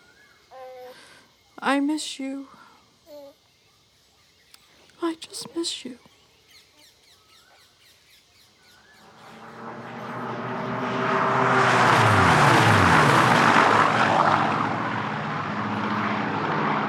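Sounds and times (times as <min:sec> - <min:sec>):
speech: 0:01.6 - 0:02.6, 0:05.1 - 0:06.1
propeller aircraft engines flying overhead: 0:08.9 - 0:16.8.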